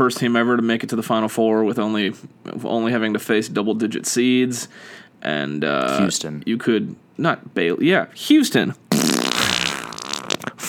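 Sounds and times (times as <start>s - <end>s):
speech: 0.0s - 8.8s
loud buzzy fart: 8.9s - 10.6s.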